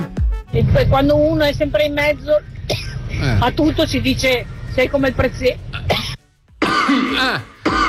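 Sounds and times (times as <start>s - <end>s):
speech: 0.6s - 6.0s, 7.0s - 7.5s
person coughing: 5.8s - 7.8s.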